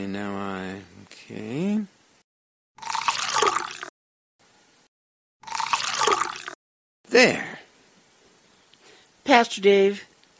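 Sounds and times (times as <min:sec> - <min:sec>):
speech: 0:00.0 - 0:02.0, 0:07.2 - 0:07.5, 0:09.3 - 0:10.3
wine pouring into glasses: 0:02.8 - 0:03.9, 0:05.4 - 0:06.6.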